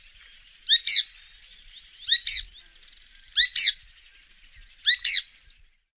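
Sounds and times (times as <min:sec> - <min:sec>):
bird giving bright high-pitched paired chirps: 0:00.0 - 0:05.6
quiet background hiss: 0:00.0 - 0:05.9.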